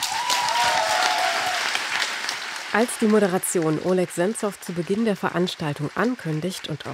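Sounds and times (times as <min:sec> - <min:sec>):
audience applause welcoming a guest onto the stage: 0:00.0 - 0:06.9
speech: 0:02.7 - 0:06.9.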